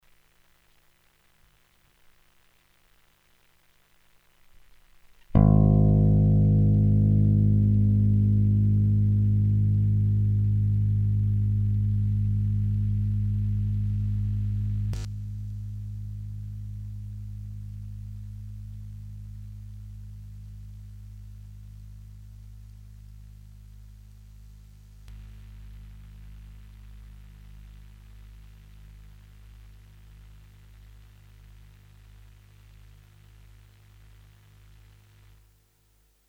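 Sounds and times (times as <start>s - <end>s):
guitar note: 5.3s - 19.4s.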